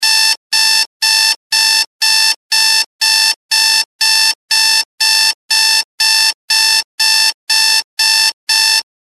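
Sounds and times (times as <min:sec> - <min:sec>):
loud alarm clock: 0:00.0 - 0:08.9.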